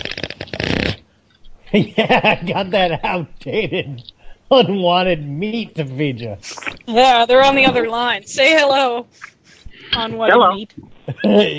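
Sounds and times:
loud fart: 0:00.0 - 0:01.0
speech: 0:01.7 - 0:11.5
laughter: 0:01.8 - 0:06.4, 0:10.0 - 0:11.5.

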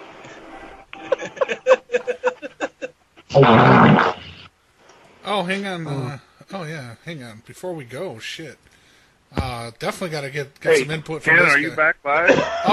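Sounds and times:
laughter: 0:01.0 - 0:03.0, 0:12.2 - 0:12.7
loud rasping fart: 0:03.3 - 0:04.5
speech: 0:03.4 - 0:03.8, 0:05.5 - 0:12.7.

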